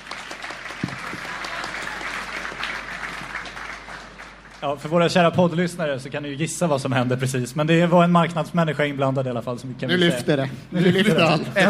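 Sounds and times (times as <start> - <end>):
crowd applauding: 0.0 - 5.0
speech: 4.6 - 11.6.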